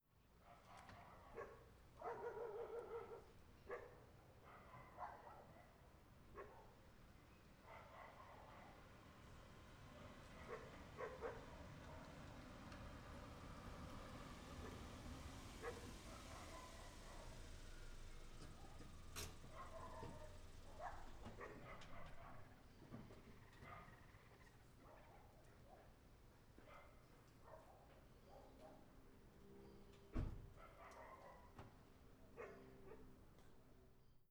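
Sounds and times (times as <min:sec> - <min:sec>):
dogs barking in the street: 0:00.4 - 0:06.9, 0:07.6 - 0:09.1, 0:10.0 - 0:12.5, 0:13.8 - 0:26.0, 0:26.6 - 0:29.0, 0:30.5 - 0:33.2
street ambience: 0:00.4 - 0:33.8
car parking: 0:09.0 - 0:22.5.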